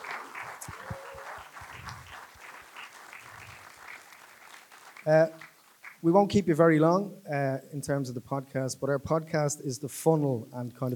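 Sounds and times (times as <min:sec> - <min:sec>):
crowd clapping: 0:00.0 - 0:06.0
speech: 0:05.0 - 0:05.4, 0:06.0 - 0:10.9.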